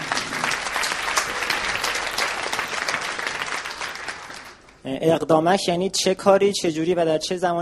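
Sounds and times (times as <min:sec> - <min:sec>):
room full of people applauding: 0:00.0 - 0:04.8
speech: 0:04.9 - 0:07.5.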